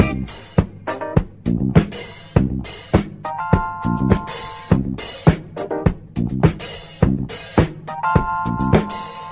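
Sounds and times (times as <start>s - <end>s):
keyboard in a phonk loop: 0.0s - 1.9s, 2.6s - 6.6s, 7.3s - 9.2s
bass in a phonk loop: 0.0s - 9.2s.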